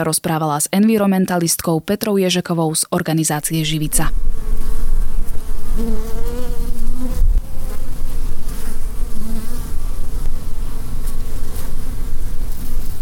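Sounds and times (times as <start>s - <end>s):
speech: 0.0s - 4.8s, 5.8s - 6.4s
swarm of many honeybees buzzing: 3.4s - 13.0s.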